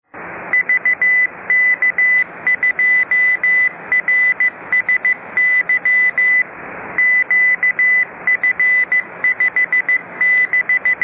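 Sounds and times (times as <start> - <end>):
amateur radio beacon in Sydney sending Morse code: 0.5 - 11.0.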